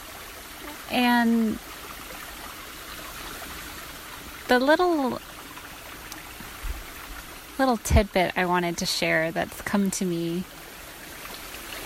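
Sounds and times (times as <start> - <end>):
creek water flowing: 0.0 - 11.8
speech: 0.9 - 1.8, 4.5 - 5.3, 7.6 - 10.6.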